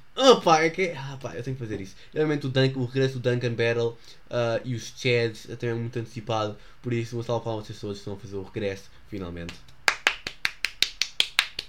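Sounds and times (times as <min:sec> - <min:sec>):
speech: 0:00.2 - 0:09.7
hand clapping: 0:09.4 - 0:11.6.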